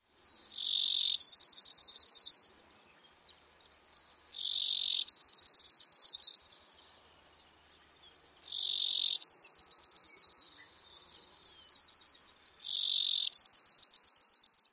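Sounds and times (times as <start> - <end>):
Brewer's Sparrow songs: 0.0 - 14.7.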